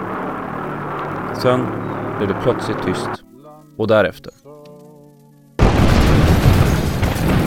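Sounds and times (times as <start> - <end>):
speech: 1.4 - 3.2, 3.8 - 4.5
powerful bomb explosion in London in 1944: 5.6 - 7.4.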